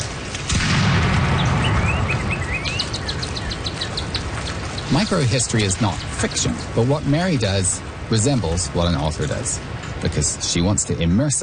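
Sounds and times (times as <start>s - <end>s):
birds chirping and trilling: 0.0s - 11.4s
cannon boom rolling into a low rumble: 0.4s - 3.1s
speech: 5.1s - 11.4s.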